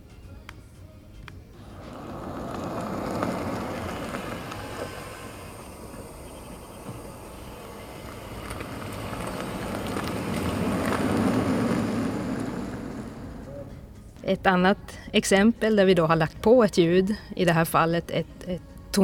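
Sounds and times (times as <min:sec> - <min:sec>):
electric vehicle tyre and road noise approaching a pedestrian crossing and driving off: 0:01.6 - 0:14.2
speech: 0:14.3 - 0:19.0.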